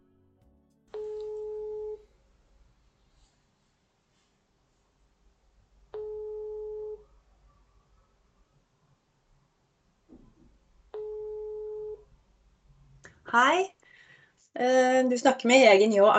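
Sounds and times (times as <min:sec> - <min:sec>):
telephone ringback tone of outgoing call: 0:00.9 - 0:02.0, 0:06.0 - 0:07.0, 0:11.0 - 0:12.0
speech: 0:13.3 - 0:13.8, 0:14.6 - 0:16.1.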